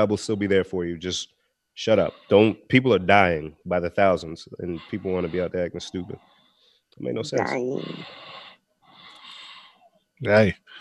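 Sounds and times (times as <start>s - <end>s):
speech: 0.0s - 8.4s, 10.2s - 10.7s
heavy wheezy breathing with a faint whistle: 1.8s - 2.7s, 4.6s - 6.4s, 7.8s - 9.8s.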